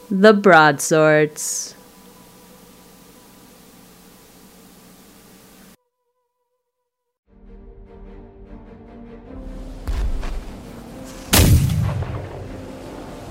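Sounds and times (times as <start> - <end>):
speech: 0.1 - 1.8
steady low drone: 9.0 - 13.2
heavy explosions beside a ship in battle: 9.8 - 13.2.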